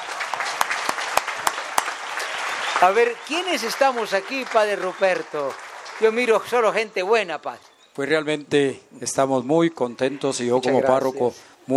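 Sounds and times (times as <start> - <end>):
parish congregation applauding a priest: 0.0 - 7.2
speech: 2.8 - 11.7.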